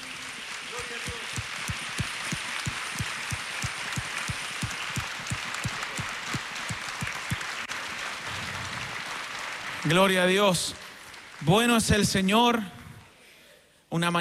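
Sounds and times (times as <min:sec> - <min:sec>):
congregation applauding: 0:00.0 - 0:12.7
speech: 0:09.8 - 0:10.8, 0:11.4 - 0:12.8, 0:13.9 - 0:14.2.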